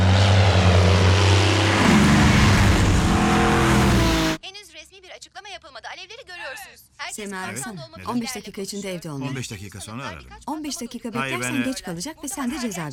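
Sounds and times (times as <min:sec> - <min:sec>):
airplane engine roaring overhead: 0:00.0 - 0:04.4
speech: 0:07.2 - 0:12.9.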